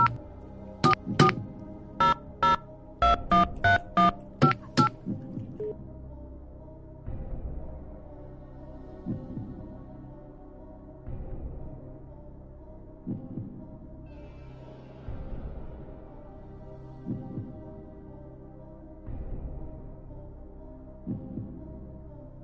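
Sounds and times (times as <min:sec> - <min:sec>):
touch-tone keypad beeps dialing a telephone number: 0:00.8 - 0:01.4, 0:02.0 - 0:04.9.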